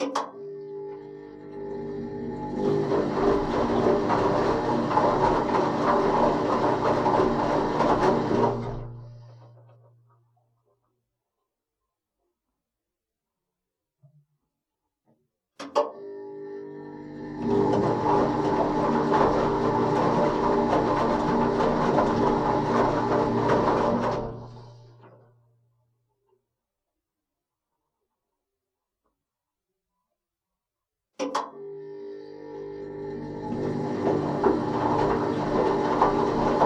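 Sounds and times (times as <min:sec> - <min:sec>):
washing machine wash and spin cycle: 0:00.0 - 0:10.1, 0:15.9 - 0:25.6, 0:31.4 - 0:36.6.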